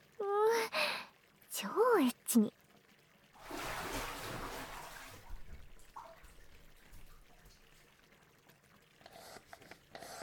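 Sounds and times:
speech: 0:01.6 - 0:02.6
rush of water: 0:03.4 - 0:07.9.

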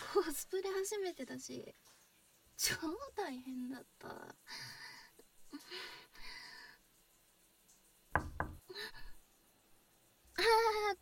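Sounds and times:
speech: 0:00.1 - 0:02.0, 0:02.6 - 0:04.8, 0:05.5 - 0:06.4, 0:10.4 - 0:10.9
person knocking firmly on a door: 0:08.2 - 0:08.7.

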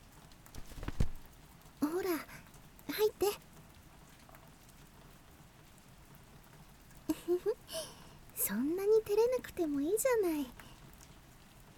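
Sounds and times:
faint steady patter of rain: 0:00.0 - 0:11.7
umbrella snapping open: 0:00.6 - 0:01.2
speech: 0:03.0 - 0:03.5, 0:09.7 - 0:10.6.

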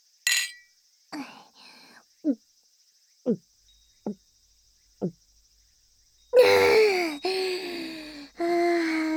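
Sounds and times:
glasses clinking: 0:00.3 - 0:00.7
person sighing contentedly: 0:01.2 - 0:01.9, 0:06.4 - 0:09.1
long satisfied breathy exhale: 0:07.2 - 0:09.1.

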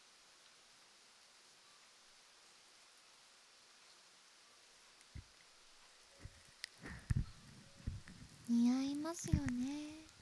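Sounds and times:
soft hiss: 0:00.0 - 0:10.2
light rain tapping and spattering on a surface: 0:05.0 - 0:10.2
speech: 0:08.5 - 0:10.1.

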